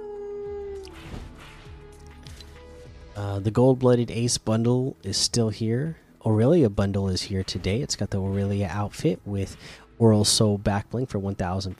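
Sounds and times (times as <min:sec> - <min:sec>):
wolf-like howl from a video game emote: 0:00.0 - 0:01.1
busy noisy electronic backdrop: 0:00.8 - 0:05.6, 0:06.2 - 0:11.7
speech: 0:03.2 - 0:11.7.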